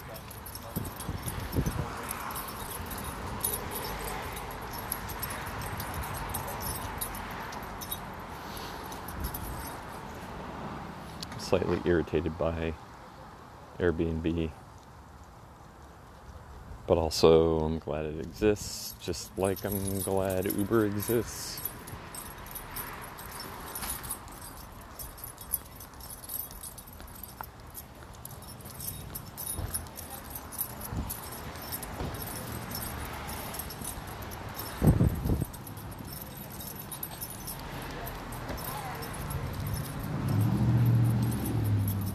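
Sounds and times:
metallic jingling: 0.0s - 10.2s, 18.2s - 42.1s
cars passing on a busy street: 0.0s - 14.5s, 17.2s - 42.1s
vehicle rumbling: 0.0s - 42.1s
speech: 11.5s - 12.9s, 13.8s - 14.6s, 16.9s - 21.6s.

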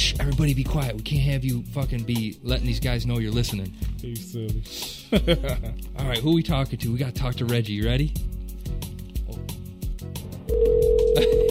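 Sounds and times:
speech: 0.2s - 8.8s
steady telephone tone: 10.5s - 11.4s.

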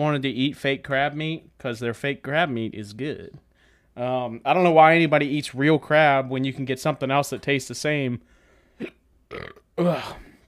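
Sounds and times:
speech: 0.0s - 3.4s, 4.0s - 10.3s
person burping: 8.8s - 10.4s.

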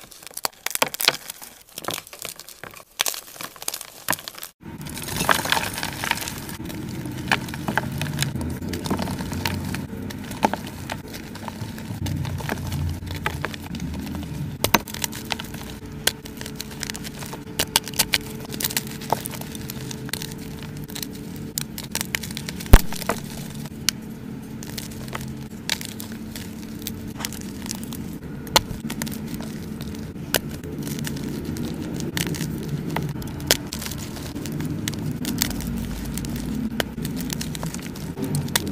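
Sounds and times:
crushing and crackling: 0.0s - 38.6s
low steady rumble: 4.6s - 38.6s.

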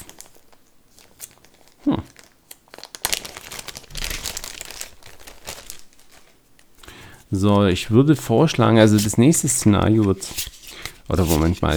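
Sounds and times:
speech: 7.3s - 10.5s, 11.1s - 11.7s
tarot card deck being shuffled: 7.3s - 11.7s.

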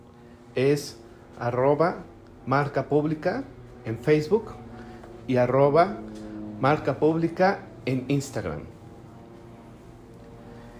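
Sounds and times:
low engine drone of airplanes passing overhead: 0.0s - 10.7s
speech: 0.6s - 4.6s, 5.3s - 8.8s.

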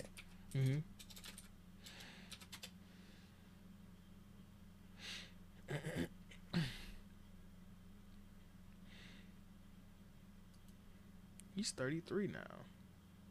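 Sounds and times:
speech: 0.0s - 0.9s, 11.6s - 12.8s
computer keyboard typing: 0.0s - 2.8s
low steady hum: 0.0s - 13.2s.

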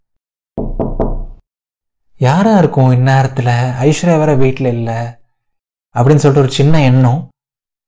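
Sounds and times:
firm knocks on a wooden door: 0.6s - 1.4s
speech: 2.2s - 5.2s, 6.0s - 7.3s.

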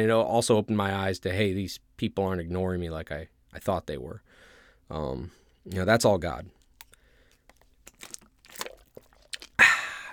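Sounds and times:
speech: 0.0s - 6.6s
sipping and swallowing water: 6.5s - 10.1s
wet mouth clicks: 6.6s - 10.1s.

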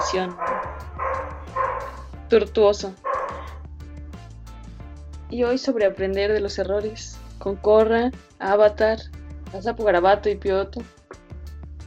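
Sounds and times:
loud sharp dog barks: 0.0s - 2.1s, 3.0s - 3.6s
speech: 0.1s - 0.7s, 2.3s - 3.0s, 5.3s - 11.0s.

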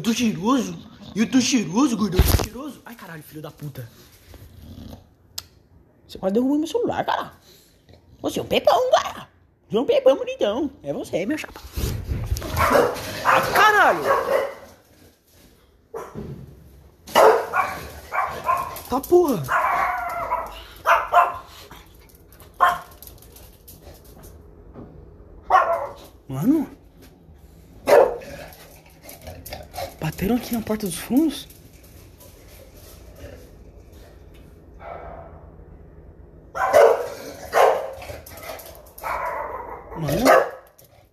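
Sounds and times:
speech: 0.0s - 4.2s, 6.1s - 7.6s, 8.2s - 14.6s, 18.9s - 19.6s, 26.3s - 26.7s, 30.2s - 31.6s
dog barking: 12.5s - 14.7s, 15.9s - 16.3s, 17.1s - 18.8s, 19.5s - 21.5s, 22.6s - 22.9s, 25.5s - 26.0s, 27.8s - 28.2s, 36.6s - 38.0s, 39.0s - 40.7s.

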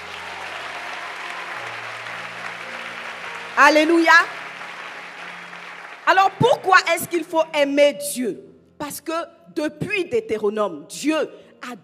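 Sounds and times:
church congregation applauding during a sermon: 0.0s - 7.3s
speech: 3.6s - 4.4s, 6.1s - 11.8s.

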